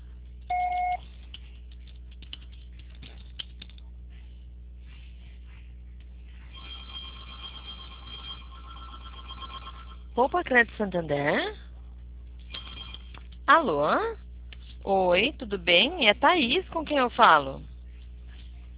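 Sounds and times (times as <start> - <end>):
voicemail recording beep: 0.5 - 1.0
speech: 10.2 - 11.6, 13.5 - 14.2, 14.8 - 17.7.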